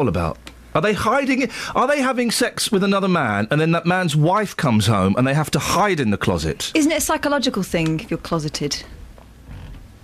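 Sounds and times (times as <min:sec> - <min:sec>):
speech: 0:00.0 - 0:09.0
knee joint creaking: 0:09.2 - 0:09.9.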